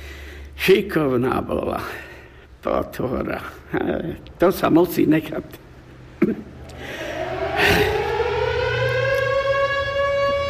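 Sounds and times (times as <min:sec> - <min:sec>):
speech: 0:00.7 - 0:05.6, 0:06.2 - 0:07.0
civil defense siren test winding up: 0:06.5 - 0:10.4.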